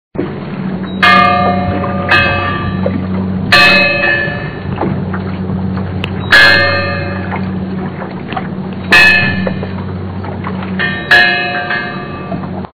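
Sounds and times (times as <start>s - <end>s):
bell buoy ringing: 0.6s - 12.7s.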